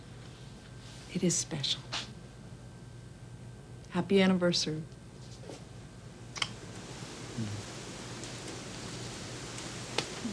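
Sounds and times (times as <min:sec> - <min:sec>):
speech: 0:01.1 - 0:02.0, 0:04.0 - 0:05.0
steady soft hiss of rain: 0:06.2 - 0:10.3.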